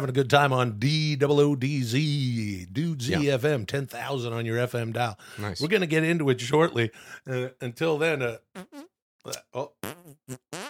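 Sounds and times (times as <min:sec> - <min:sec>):
speech: 0:00.0 - 0:10.6
fart noises: 0:08.6 - 0:10.6.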